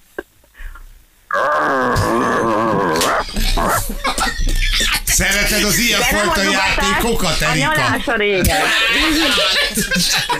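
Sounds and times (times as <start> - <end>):
person imitating a dog's growl: 1.3 - 4.0
laughter: 2.9 - 10.3
speech: 3.5 - 10.3.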